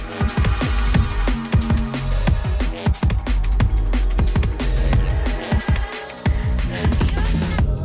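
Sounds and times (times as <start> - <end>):
loud electronic dance track: 0.0 - 7.7.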